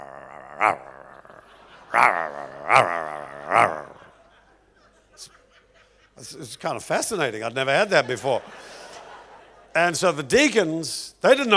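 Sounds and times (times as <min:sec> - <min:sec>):
man's voice imitating a growling dog: 0:00.0 - 0:04.1
speech: 0:00.6 - 0:01.0, 0:01.9 - 0:03.9, 0:06.2 - 0:08.8, 0:09.8 - 0:11.5
laughter: 0:00.9 - 0:06.4, 0:07.7 - 0:09.8.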